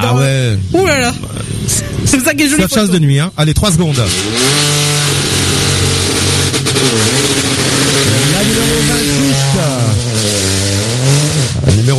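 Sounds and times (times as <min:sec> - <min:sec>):
speech: 0:00.0 - 0:04.8, 0:06.8 - 0:10.0
rally car engine sputtering as it pulls away: 0:00.0 - 0:11.9.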